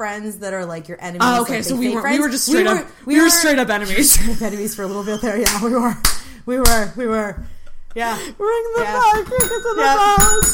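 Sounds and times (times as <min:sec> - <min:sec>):
speech: 0:00.0 - 0:10.5
bell dinging: 0:09.3 - 0:10.5.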